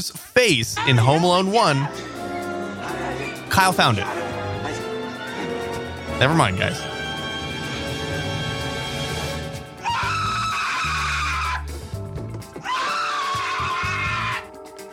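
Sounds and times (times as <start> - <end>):
speech: 0.0 - 2.1, 3.5 - 4.2, 6.2 - 7.0
busy film soundtrack music: 0.2 - 14.9
man screaming shrilly in a film scene: 0.8 - 2.0, 9.8 - 11.7, 12.6 - 14.5.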